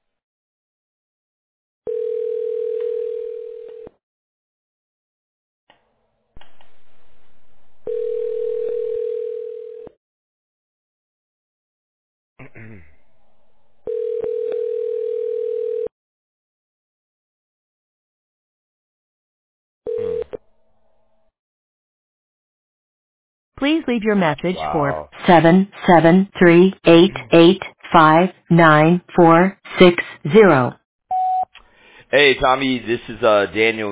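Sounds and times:
telephone line tone while placing a call to leave a voicemail: 0:01.9 - 0:04.0, 0:07.8 - 0:10.0, 0:13.9 - 0:15.9, 0:19.9 - 0:20.4, 0:31.1 - 0:31.4
speech: 0:23.6 - 0:30.8, 0:32.1 - 0:33.9.

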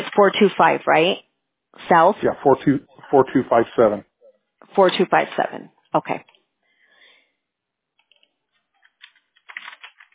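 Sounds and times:
speech: 0:00.2 - 0:06.3
computer keyboard typing: 0:08.0 - 0:10.1.

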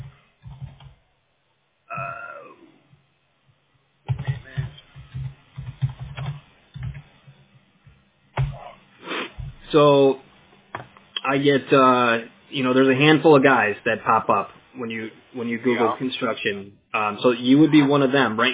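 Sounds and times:
typing on a computer keyboard: 0:00.4 - 0:01.0, 0:04.1 - 0:07.0
speech: 0:09.7 - 0:10.2, 0:11.3 - 0:18.5.

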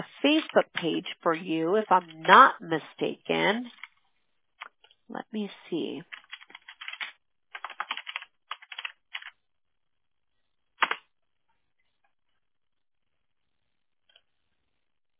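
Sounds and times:
speech: 0:00.2 - 0:03.8, 0:05.1 - 0:06.2
clattery typing on a computer keyboard: 0:06.1 - 0:09.4, 0:10.8 - 0:11.0.

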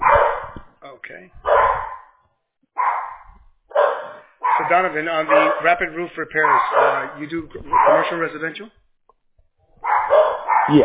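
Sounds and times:
dog barking excitedly at home: 0:00.0 - 0:00.7, 0:01.4 - 0:02.2, 0:02.8 - 0:08.4, 0:09.8 - 0:10.8
speech: 0:04.7 - 0:08.8.

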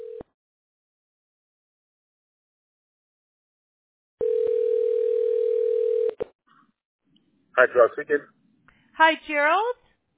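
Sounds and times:
phone call ringback tone: 0:00.0 - 0:00.3, 0:04.2 - 0:06.2
speech: 0:07.6 - 0:08.4, 0:09.0 - 0:09.8.

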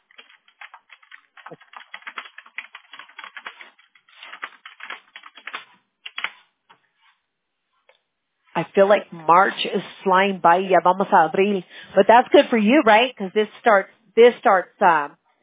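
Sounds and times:
typing on a computer keyboard: 0:00.0 - 0:06.4
speech: 0:08.7 - 0:15.2.

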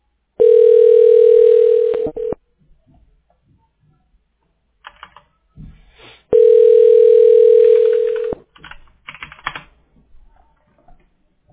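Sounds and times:
telephone ringback tone: 0:00.4 - 0:02.4, 0:06.3 - 0:08.4.

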